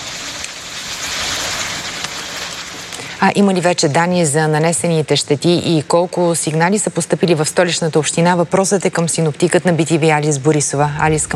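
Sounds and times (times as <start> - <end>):
hail impacts: 0.0 - 3.2
heavy rain in a rainstorm: 0.0 - 3.2, 10.9 - 11.3
speech: 3.2 - 11.3.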